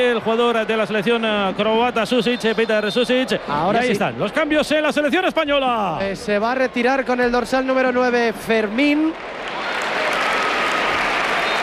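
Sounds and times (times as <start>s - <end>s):
stadium crowd applauding a substituted football player: 0.0s - 3.2s, 8.4s - 11.6s
speech: 0.0s - 9.6s.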